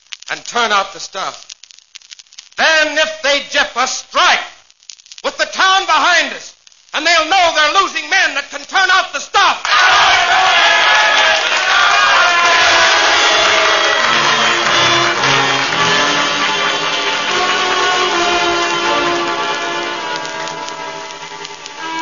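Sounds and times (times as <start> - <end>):
speech: 0.3 - 1.5, 2.6 - 4.5, 5.3 - 12.4
large crowd cheering and roaring: 9.6 - 22.0.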